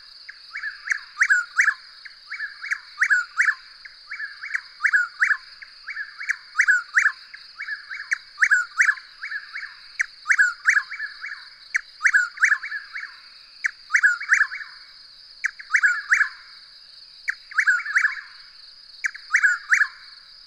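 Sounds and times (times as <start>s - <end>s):
bird chirping: 0.4s - 14.8s, 15.4s - 16.4s, 17.3s - 18.4s, 19.0s - 20.1s.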